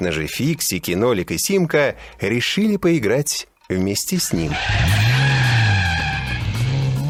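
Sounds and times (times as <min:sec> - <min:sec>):
speech: 0:00.0 - 0:05.2
racing car tire squeal in a computer racing game: 0:04.4 - 0:07.0.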